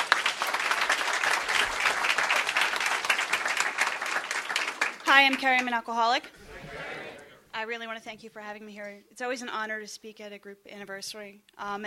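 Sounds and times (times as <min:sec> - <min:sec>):
audience applause for a guest speaker at a group anniversary meeting: 0:00.0 - 0:05.4
speech: 0:05.1 - 0:06.8, 0:07.6 - 0:11.8.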